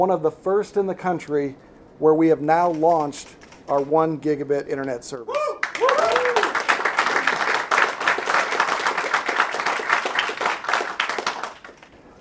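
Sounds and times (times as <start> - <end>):
speech: 0.0 - 5.9
whistle or cheer from the crowd: 5.3 - 6.5
large crowd of local leaders applauding at an internet service launch in Texas: 5.6 - 12.0.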